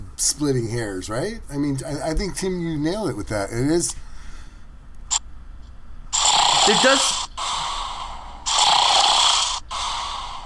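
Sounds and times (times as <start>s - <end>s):
speech: 0.2s - 4.1s, 6.7s - 7.2s
person imitating snoring: 6.2s - 10.4s.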